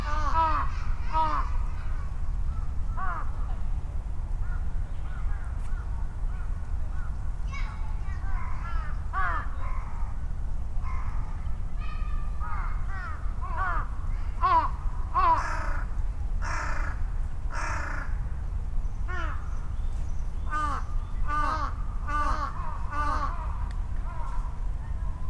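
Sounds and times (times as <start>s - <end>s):
crows cawing back and forth: 0.0s - 1.9s, 2.5s - 3.4s, 8.4s - 10.1s, 12.4s - 18.2s, 19.1s - 19.5s, 20.5s - 24.5s
voices: 0.0s - 17.6s, 20.5s - 25.2s
constant low rumble of traffic: 0.0s - 25.2s.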